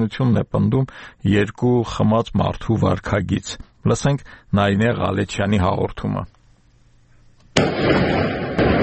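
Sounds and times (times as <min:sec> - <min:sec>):
speech: 0:00.0 - 0:06.4, 0:07.6 - 0:08.4
gunshots at midnight near a presidential residence: 0:07.6 - 0:08.8.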